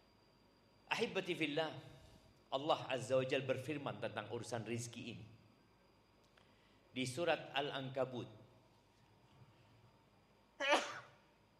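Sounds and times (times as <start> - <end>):
faint low hum: 0.0 - 11.5
speech: 1.0 - 1.9, 2.5 - 5.4, 6.9 - 8.4
sneeze: 10.6 - 11.2.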